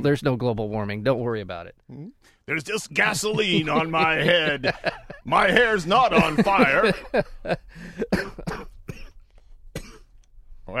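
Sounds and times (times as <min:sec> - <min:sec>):
speech: 0:00.0 - 0:08.7
laughter: 0:02.8 - 0:08.1
harsh coughing: 0:06.6 - 0:10.3.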